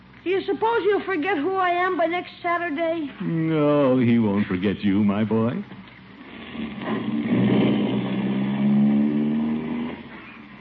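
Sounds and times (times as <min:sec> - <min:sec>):
speech: 0:00.2 - 0:05.8, 0:06.6 - 0:07.2
car engine humming inside a moving car: 0:06.4 - 0:10.5.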